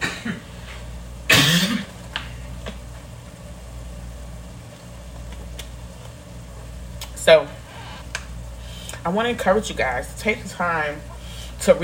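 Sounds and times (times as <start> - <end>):
person coughing: 0.0 - 0.6, 1.3 - 1.9
speech: 7.2 - 7.6, 9.0 - 11.8.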